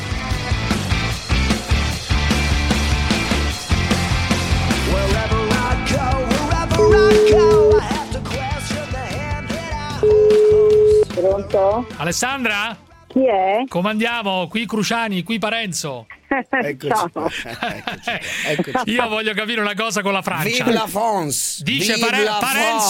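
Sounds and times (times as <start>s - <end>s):
loud busy music: 0.0s - 13.0s
telephone ringback tones from an outgoing call: 6.8s - 7.9s, 10.0s - 11.1s
speech: 11.2s - 22.8s
laughter: 16.8s - 19.2s.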